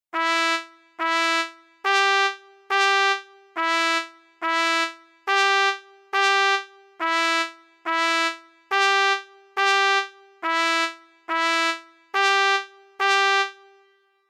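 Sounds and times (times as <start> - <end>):
trumpet rhythm: 0.1 - 13.9.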